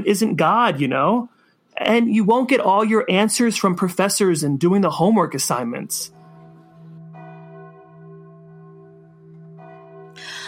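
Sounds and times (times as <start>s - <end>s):
speech: 0.0s - 6.2s
large curfew bell tolling: 6.1s - 10.4s.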